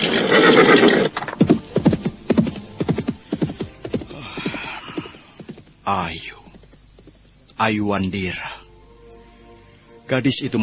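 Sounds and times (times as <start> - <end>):
ridden horse whinnying: 0.0 - 5.6
horse hooves clip-clopping: 0.0 - 8.2
speech: 5.9 - 6.4, 7.6 - 8.5, 10.1 - 10.6.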